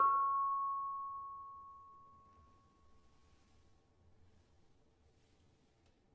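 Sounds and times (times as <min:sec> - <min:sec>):
tuned gamelan barung playing C sharp: 0:00.0 - 0:02.2.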